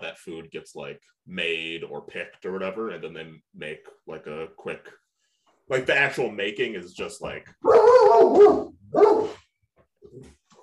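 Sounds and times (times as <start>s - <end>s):
speech: 0.2s - 5.0s, 5.7s - 9.4s, 10.0s - 10.4s
dog barking loud and rough: 7.6s - 9.4s.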